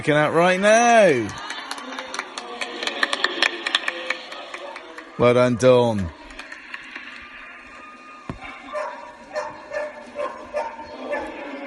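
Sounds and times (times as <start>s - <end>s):
speech: 0.0s - 1.5s, 5.2s - 6.2s
dog barking: 8.4s - 11.5s.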